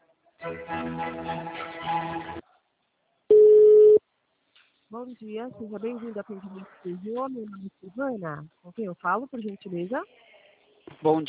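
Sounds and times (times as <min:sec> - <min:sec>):
speech: 0:00.4 - 0:02.4, 0:04.9 - 0:10.3, 0:10.9 - 0:11.2
telephone transfer tone while on hold with a customer service line: 0:03.3 - 0:04.0.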